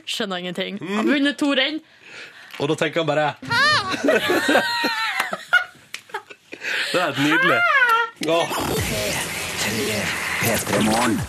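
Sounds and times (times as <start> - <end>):
speech: 0.1 - 5.0, 6.9 - 11.2
joyful high-pitched scream: 3.4 - 5.2
laughter: 3.4 - 8.2.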